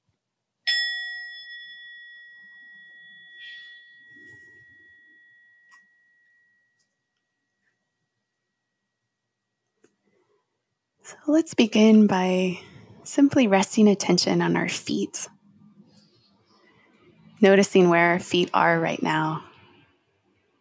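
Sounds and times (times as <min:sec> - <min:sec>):
meditation bell ringing: 0:00.7 - 0:07.7
speech: 0:11.1 - 0:15.4, 0:17.4 - 0:19.5.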